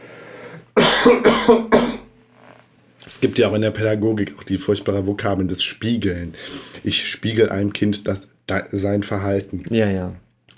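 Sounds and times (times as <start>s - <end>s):
harsh, loud coughs: 0.8s - 2.1s
speech: 1.0s - 1.8s, 3.2s - 10.2s.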